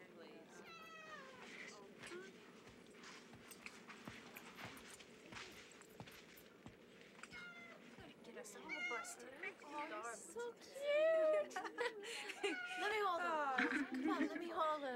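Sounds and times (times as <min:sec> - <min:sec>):
cat meowing: 0:00.6 - 0:01.6, 0:07.3 - 0:07.8, 0:08.6 - 0:09.3
footsteps: 0:01.2 - 0:08.6
laughter: 0:10.8 - 0:14.8.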